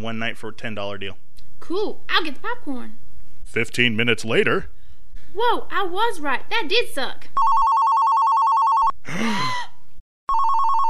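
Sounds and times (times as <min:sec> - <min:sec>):
speech: 0:00.0 - 0:07.6
telephone ringing with a fast trilling electronic bell: 0:07.4 - 0:09.0, 0:10.3 - 0:10.8.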